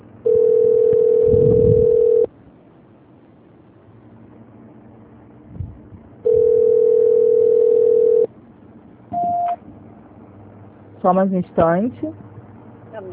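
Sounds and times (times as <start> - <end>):
telephone ringback tone during a call transfer: 0.2 - 2.3, 6.2 - 8.3
speech: 11.0 - 12.2, 13.0 - 13.1.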